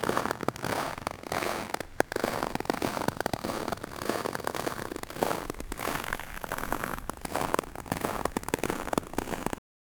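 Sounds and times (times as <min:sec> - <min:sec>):
crunching snow: 0:00.0 - 0:09.6.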